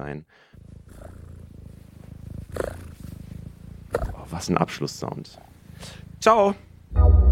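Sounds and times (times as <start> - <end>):
speech: 0.0 - 0.7, 4.3 - 7.2
cat purring: 0.0 - 7.0.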